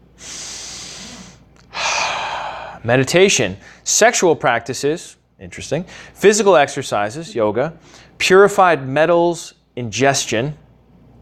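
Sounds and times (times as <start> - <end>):
long steady airy inhale as a breathing technique: 0.0 - 2.8, 5.9 - 6.2, 7.8 - 8.2
louder forceful exhale as a breathing technique: 0.1 - 2.8
speech: 2.8 - 10.6.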